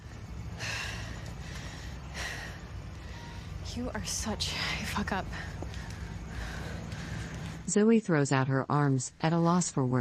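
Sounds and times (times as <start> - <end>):
woman panting after running down a street: 0.0 - 3.6, 4.5 - 7.6
speech: 3.7 - 5.6, 7.7 - 9.9.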